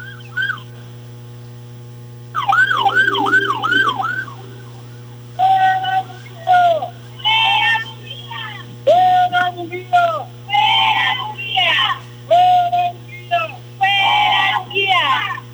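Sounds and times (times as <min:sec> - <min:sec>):
ambulance siren wailing: 0:00.0 - 0:00.8, 0:02.4 - 0:08.6
steady low electrical hum: 0:00.0 - 0:15.5.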